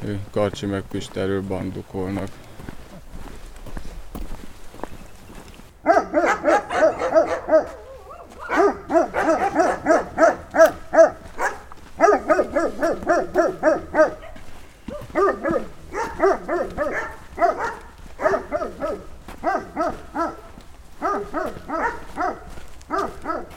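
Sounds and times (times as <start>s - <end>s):
speech: 0.1s - 2.5s
large dog barking loudly in forests: 5.8s - 23.5s.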